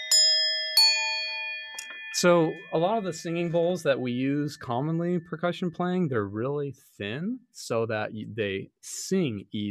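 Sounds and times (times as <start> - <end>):
bright metallic temple bell strikes: 0.1 - 3.7
speech: 2.1 - 9.7.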